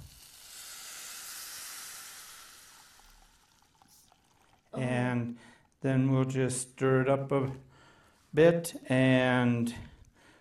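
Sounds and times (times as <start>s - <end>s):
water pouring into a microwave-safe glass bowl: 0.0s - 5.8s
speech: 4.8s - 7.7s, 8.4s - 9.9s.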